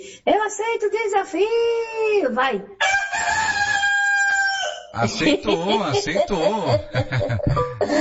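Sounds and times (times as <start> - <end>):
speech: 0.2 - 3.3, 4.9 - 7.9
powerful rooster crowing in a crowing contest: 2.8 - 5.0
laughter: 5.0 - 7.9.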